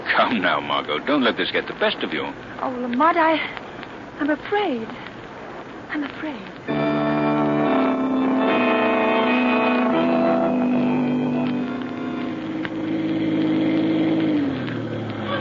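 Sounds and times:
speech: 0:00.3 - 0:03.6, 0:04.2 - 0:05.1, 0:05.9 - 0:07.0
car engine droning: 0:06.7 - 0:15.4.

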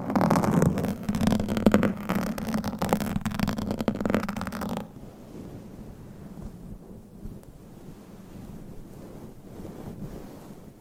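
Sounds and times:
low rumbling microphone handling noise: 0:00.0 - 0:05.0
microphone scratched and rubbed hard: 0:00.0 - 0:05.5.

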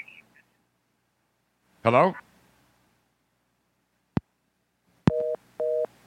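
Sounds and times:
speech: 0:01.8 - 0:02.3
busy signal two-note tone on phone line: 0:05.1 - 0:05.9
sharp clicks on a phone line: 0:05.1 - 0:05.9.

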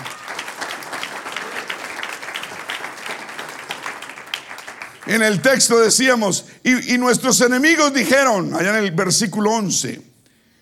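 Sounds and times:
room full of people applauding: 0:00.0 - 0:05.9
speech: 0:05.1 - 0:10.1.

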